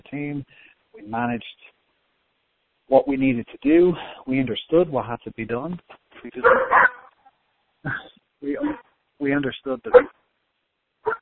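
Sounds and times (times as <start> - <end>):
speech: 0.1 - 1.7, 2.9 - 7.0, 7.8 - 10.2
dog barking in short sharp bursts: 6.4 - 7.2, 9.9 - 10.1, 11.0 - 11.2.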